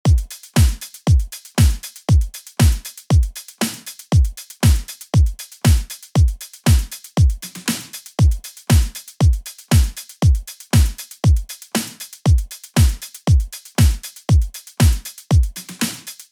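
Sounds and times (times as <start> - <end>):
drum hits: 0.1 - 16.0.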